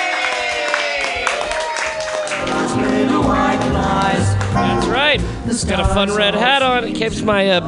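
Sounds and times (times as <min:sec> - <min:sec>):
scattered cheers: 0:00.0 - 0:02.4
comedy-show crowd applauding: 0:00.0 - 0:05.0
tonal sound: 0:02.4 - 0:07.6
speech: 0:05.1 - 0:07.6.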